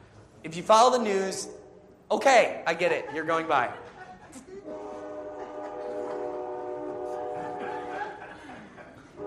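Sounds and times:
speech: 0.4s - 4.7s
laughter: 2.7s - 6.4s, 7.0s - 9.2s
passing train horn: 4.6s - 8.2s.

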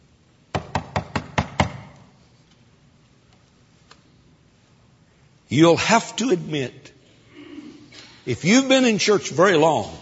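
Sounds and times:
sharp knocks on a door: 0.5s - 1.8s
speech: 5.5s - 7.0s, 8.2s - 10.0s.

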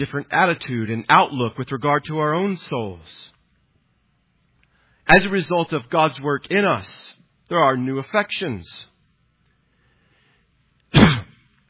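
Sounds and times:
speech: 0.0s - 3.3s, 5.1s - 8.9s
short harsh throaty cough: 10.9s - 11.6s.

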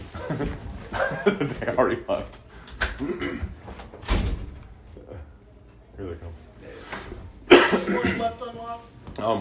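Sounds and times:
speech: 0.4s - 2.4s, 3.0s - 3.5s, 7.9s - 9.3s
heavy bang of a locked door: 3.9s - 4.6s.

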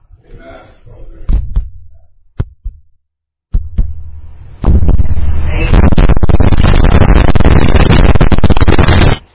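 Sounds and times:
loud dense distorted pounding: 1.1s - 2.9s, 3.5s - 9.3s
low heartbeat thumps: 1.2s - 8.8s.

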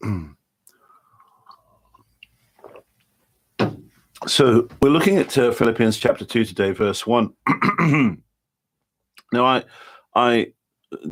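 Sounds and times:
gulp: 0.0s - 2.9s
small wet mouth clicks: 0.6s - 2.9s
person sipping water: 0.6s - 3.1s
soft slurp: 1.0s - 3.0s
speech: 4.3s - 8.2s, 9.3s - 11.1s
short bursts of breath or voice: 9.7s - 10.1s.

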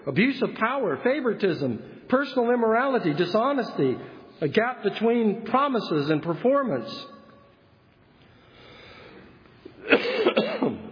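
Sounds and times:
speech: 0.0s - 7.2s
person coughing raspily: 9.8s - 10.8s.

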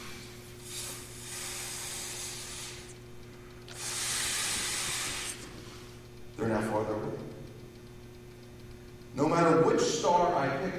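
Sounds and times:
rushing air hiss: 0.0s - 3.0s, 3.7s - 5.5s
faint low hum: 0.0s - 10.7s
speech: 9.6s - 10.7s.

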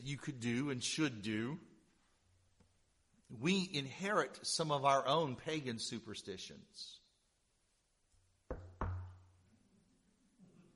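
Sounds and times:
speech: 0.0s - 1.7s, 3.3s - 7.0s
knuckles rapping on a wooden surface: 8.5s - 9.2s.

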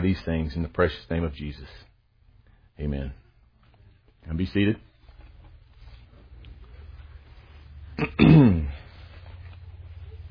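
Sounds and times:
speech: 0.0s - 1.9s, 2.8s - 3.2s, 4.2s - 4.9s, 8.0s - 8.8s
man clearing his throat: 8.0s - 8.9s.

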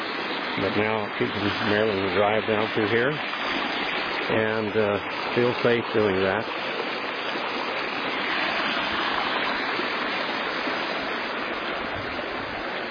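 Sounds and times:
creek water flowing: 0.0s - 12.8s
speech: 0.6s - 3.6s, 4.3s - 6.7s.

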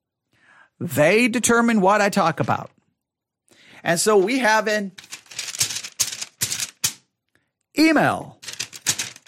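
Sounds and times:
speech: 0.8s - 2.8s, 3.8s - 5.1s, 7.8s - 8.4s
sheet of paper rustling: 4.2s - 7.0s, 8.4s - 9.2s.

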